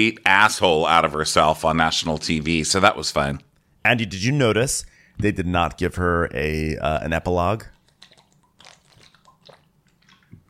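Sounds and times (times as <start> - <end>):
speech: 0.0 - 7.8
person drinking with slurps and swallowing gulps: 7.7 - 10.4.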